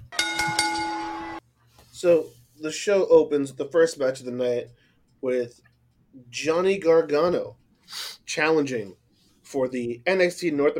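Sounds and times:
bright bell ringing: 0.0 - 1.4
speech: 2.0 - 10.7.

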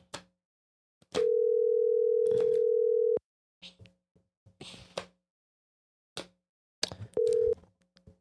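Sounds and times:
telephone ringback tone of an unanswered call: 1.2 - 3.2, 7.2 - 7.6.

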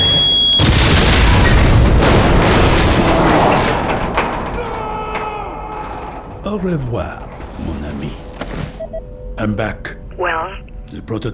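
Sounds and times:
booby-trapped briefcase exploding at a gate: 0.6 - 5.2
speech: 6.6 - 8.6, 9.4 - 11.3.

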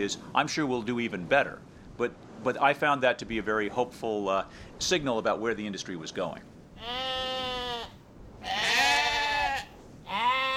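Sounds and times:
speech: 0.0 - 7.1
sheep bleating: 6.8 - 10.5.

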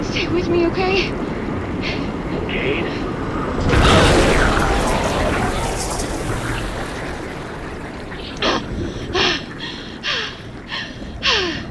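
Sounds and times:
speech: 0.1 - 1.3, 1.8 - 4.8
underwater wash: 0.8 - 11.6
heavy submarine outer hatch unsealing underwater with a loud rushing surge: 3.5 - 9.2.

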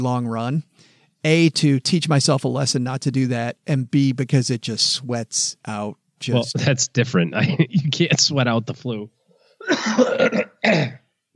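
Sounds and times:
speech: 0.0 - 11.0
laughter: 6.3 - 8.6
harsh throaty cough: 9.6 - 11.0.

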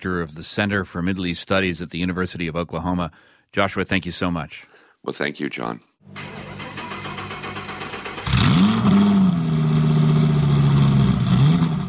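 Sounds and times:
speech: 0.0 - 6.4
NASCAR stock car engine roaring and revving: 6.4 - 11.8.

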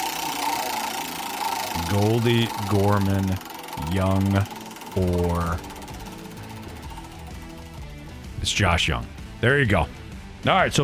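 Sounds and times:
spinning prize wheel clicking: 0.0 - 8.5
speech: 1.8 - 5.7, 8.4 - 10.8.

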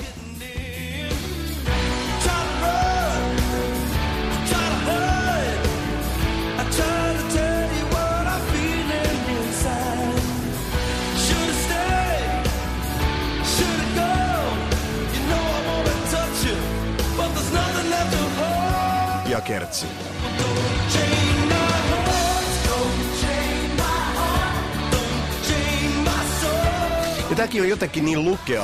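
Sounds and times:
heavy electric guitar: 0.0 - 28.6
loud rock chorus: 0.0 - 28.6
person singing a soaring melody: 0.0 - 28.6
speech: 27.5 - 28.6.

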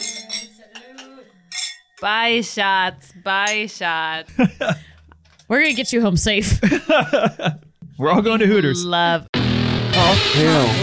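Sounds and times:
glasses clinking in a toast: 0.0 - 3.8
speech: 2.0 - 4.9, 5.5 - 9.3, 10.1 - 10.8
laughter: 4.3 - 4.9, 6.4 - 7.6.

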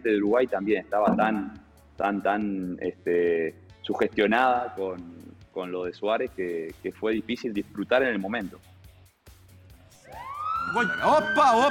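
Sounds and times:
speech: 0.0 - 8.7, 10.1 - 11.6
siren sound effect wailing: 10.1 - 11.6.

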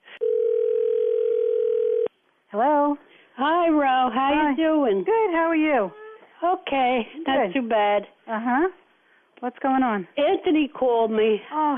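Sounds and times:
telephone dial tone: 0.2 - 2.1
speech: 2.5 - 8.8, 9.4 - 11.7.

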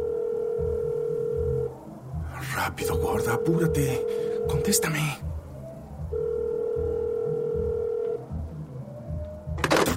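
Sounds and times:
telephone tone on a call to emergency services: 0.0 - 1.8, 2.9 - 5.0, 6.1 - 8.4
low rumbling background: 0.0 - 9.6
speech: 2.6 - 5.3.

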